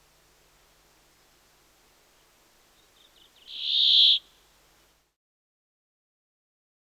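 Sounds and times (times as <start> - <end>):
Brambling song with drawn-out nasal buzz: 2.2 - 4.5.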